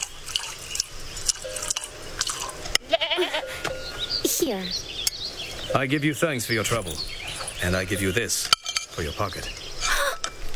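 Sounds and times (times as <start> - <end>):
splashy dripping: 0.0 - 2.8
nanny goat bleating: 2.8 - 3.6
speech: 4.5 - 4.9, 5.7 - 9.6.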